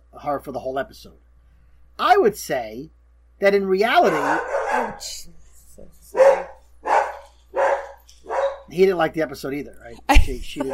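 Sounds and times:
speech: 0.2s - 1.3s, 2.0s - 6.4s, 8.7s - 10.7s
dog barking: 4.0s - 5.0s, 6.1s - 8.7s.

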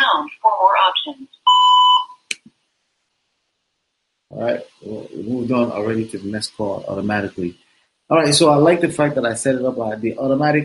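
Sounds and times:
speech: 1.0s - 1.4s, 4.4s - 10.6s
voicemail recording electronic beep tone: 1.5s - 2.2s.

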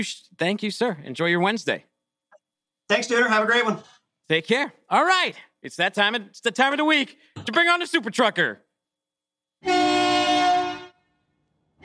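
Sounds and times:
speech: 0.0s - 1.9s, 2.9s - 8.6s
train horn blast: 9.6s - 11.8s.

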